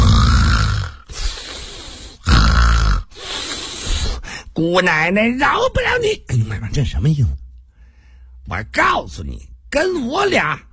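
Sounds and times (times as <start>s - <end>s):
woman snoring lying in bed: 0.0s - 4.2s
speech: 4.6s - 7.4s, 8.5s - 10.7s.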